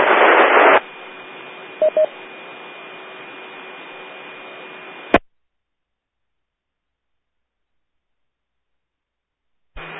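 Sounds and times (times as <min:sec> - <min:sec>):
faint hum: 0:00.0 - 0:05.2, 0:06.3 - 0:09.9
radio static from a weak transmission: 0:00.0 - 0:05.2, 0:09.8 - 0:09.9
short beeps: 0:01.8 - 0:02.1.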